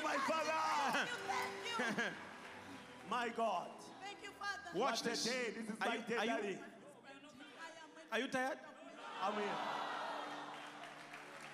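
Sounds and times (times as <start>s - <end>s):
audience clapping hands: 0.0s - 4.0s, 9.4s - 11.5s
speech: 1.8s - 2.3s, 3.1s - 3.9s, 4.7s - 6.7s, 8.1s - 9.8s.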